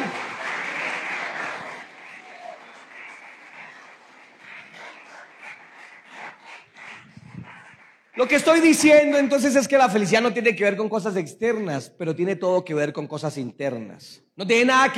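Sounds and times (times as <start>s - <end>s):
audience applauding: 0.0s - 9.0s
speech: 8.2s - 14.9s.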